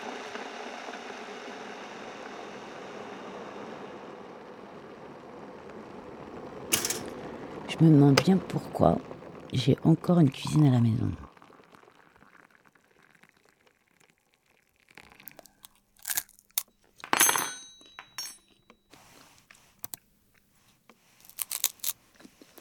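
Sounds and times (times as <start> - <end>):
speech: 7.8 - 11.2
crunching of a dry snack being chewed at a computer keyboard: 15.2 - 16.6, 21.1 - 22.5.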